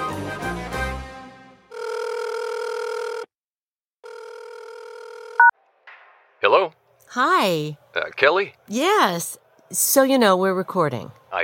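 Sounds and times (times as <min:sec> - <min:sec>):
telephone line ringing tone: 0:01.7 - 0:03.3, 0:04.0 - 0:05.5
speech: 0:07.2 - 0:11.4.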